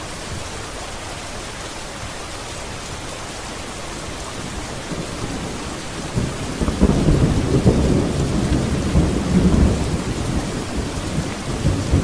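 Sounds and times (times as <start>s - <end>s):
steady dense rain hissing: 0.0s - 12.0s
soft roll of thunder: 4.9s - 12.0s.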